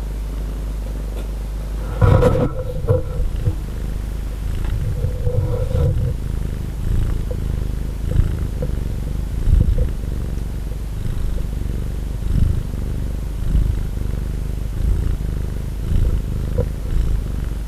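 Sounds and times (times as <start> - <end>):
domestic cat purring: 0.2 - 17.6
soft clicks and rustles: 1.2 - 11.6.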